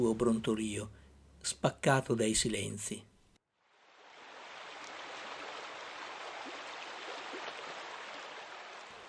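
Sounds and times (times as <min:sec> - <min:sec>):
speech: 0:00.0 - 0:03.1
flowing river water: 0:03.7 - 0:09.0.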